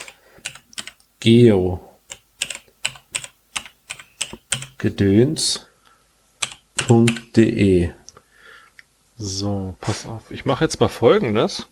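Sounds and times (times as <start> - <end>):
typing on a computer keyboard: 0.0 - 1.3, 2.1 - 5.0, 6.4 - 7.3
speech: 1.2 - 1.9, 4.8 - 5.7, 6.9 - 8.0, 9.2 - 11.7.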